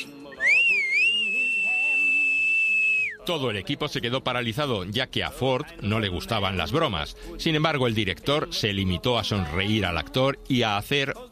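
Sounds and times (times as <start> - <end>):
long loud shrill whistle: 0.3 - 3.2
speech: 3.2 - 11.2.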